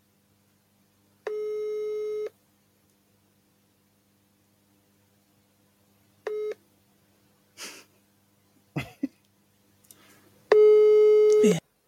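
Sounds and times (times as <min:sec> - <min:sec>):
telephone line tone during a call: 0:01.3 - 0:02.3, 0:06.3 - 0:06.6, 0:10.5 - 0:11.6.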